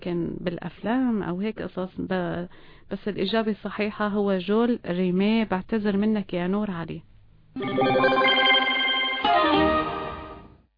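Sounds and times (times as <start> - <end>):
speech: 0.0 - 8.5
electronic telephone ringtone for an incoming call: 7.6 - 10.5.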